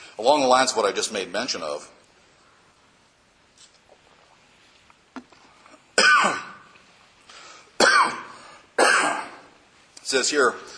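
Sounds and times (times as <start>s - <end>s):
speech: 0.2s - 2.0s, 10.1s - 10.7s
man coughing harshly during a sermon: 6.0s - 6.7s, 7.8s - 9.5s.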